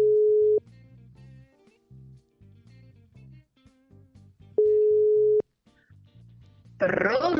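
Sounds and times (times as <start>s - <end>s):
ringing tone of an outgoing telephone call: 0.0s - 0.6s, 4.6s - 5.4s
person talking: 6.8s - 7.3s.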